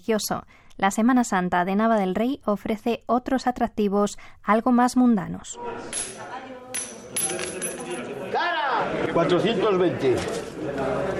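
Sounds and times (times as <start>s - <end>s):
speech: 0.0s - 6.3s, 9.2s - 11.1s
crowd chattering and murmuring in Nava del Rey during Holy Week: 5.6s - 11.1s
two coins tossed in a heads-or-tails betting game clinking on the ground: 5.9s - 8.1s.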